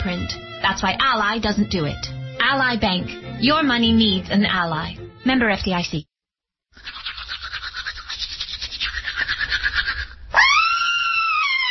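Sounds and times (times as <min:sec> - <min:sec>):
speech: 0:00.0 - 0:06.1
toothbrush scrubbing: 0:06.8 - 0:10.2
woman screaming: 0:10.3 - 0:11.6.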